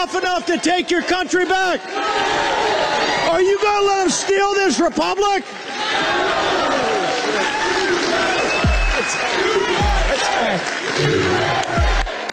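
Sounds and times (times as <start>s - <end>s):
large crowd at an election-fraud summit in Missouri roaring and chanting: 0.0s - 4.6s, 5.4s - 12.3s
speech: 0.0s - 7.5s
rhythmic low thumps: 8.6s - 9.0s, 9.8s - 10.2s, 11.0s - 12.2s.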